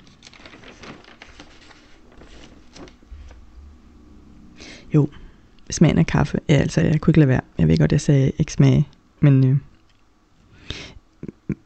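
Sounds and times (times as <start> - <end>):
paper pages being flipped: 0.0 - 3.5
speech: 4.9 - 9.7.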